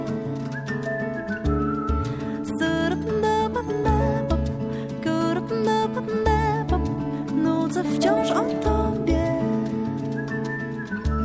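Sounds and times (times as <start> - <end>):
whistled melody: 0.0 - 4.2, 7.9 - 11.2
musical accompaniment: 0.0 - 11.2.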